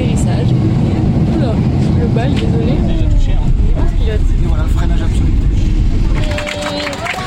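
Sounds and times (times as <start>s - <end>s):
murmuring voices: 0.0s - 7.2s
steady airplane engine rumble: 0.0s - 7.2s
speech: 2.2s - 3.0s
passengers applauding inside an airplane cabin: 6.0s - 7.2s.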